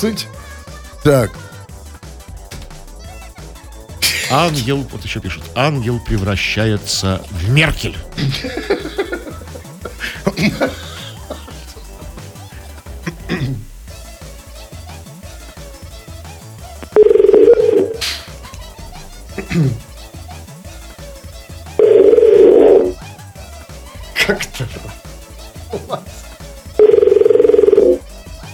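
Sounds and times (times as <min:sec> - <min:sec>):
speech: 0:00.0 - 0:00.4, 0:01.0 - 0:01.5, 0:04.3 - 0:09.2, 0:10.3 - 0:10.8
laughter: 0:04.0 - 0:05.0, 0:08.0 - 0:13.6, 0:19.3 - 0:19.9, 0:24.0 - 0:25.0, 0:25.6 - 0:26.2
telephone ringback tone: 0:16.9 - 0:18.0, 0:21.8 - 0:23.0, 0:26.8 - 0:28.0.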